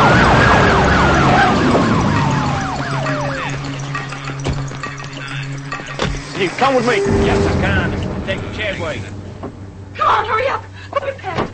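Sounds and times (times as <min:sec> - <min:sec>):
police car sirens wailing and yelping: 0:00.0 - 0:07.4
speech: 0:06.4 - 0:09.2, 0:10.0 - 0:11.5
low engine rumble: 0:06.4 - 0:11.5.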